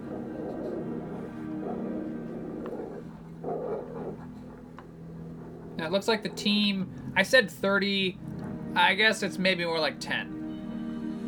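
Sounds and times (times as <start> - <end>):
German Shepherd search dogs barking and growling outdoors at night: 0.0 - 7.4
steady low rumble of noise: 0.0 - 11.2
speech: 5.8 - 10.4.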